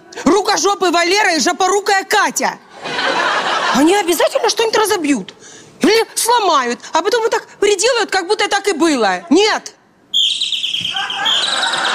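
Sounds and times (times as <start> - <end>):
speech: 0.5 - 2.7, 3.8 - 9.8
laughter: 2.7 - 4.3, 10.8 - 11.9
high rapid bird-like chirping and twittering with overlapping trills: 10.2 - 11.9.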